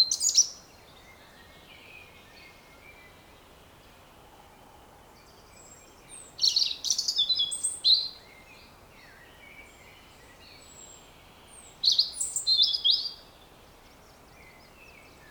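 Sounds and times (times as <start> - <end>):
European robin Erithacus rubecula calling: 0.0 - 0.6, 6.1 - 8.2, 11.5 - 13.4.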